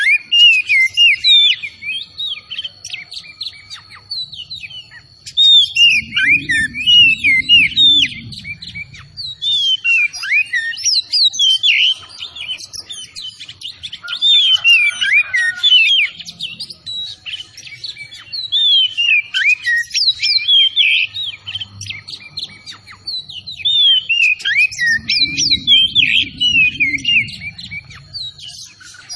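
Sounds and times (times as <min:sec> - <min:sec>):
Oriental magpie-robin singing vigorously: 0:00.0 - 0:29.1
faint low hum: 0:03.2 - 0:09.8, 0:21.2 - 0:29.1.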